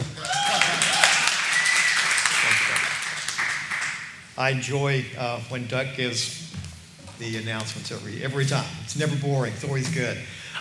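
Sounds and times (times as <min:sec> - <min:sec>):
whoops and voices: 0:00.0 - 0:02.8
crowd applause: 0:00.0 - 0:04.2
speech: 0:04.4 - 0:06.4, 0:07.2 - 0:10.4.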